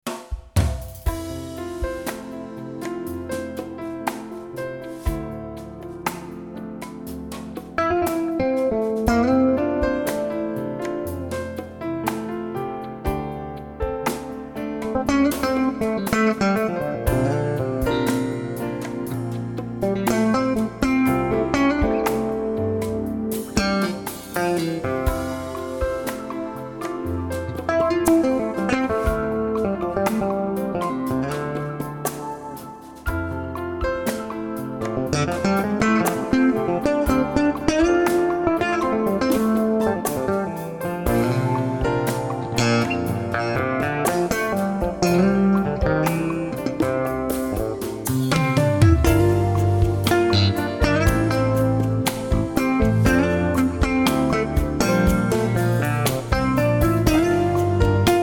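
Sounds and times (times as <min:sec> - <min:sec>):
electric bass solo bridge: 0:01.0 - 0:58.2.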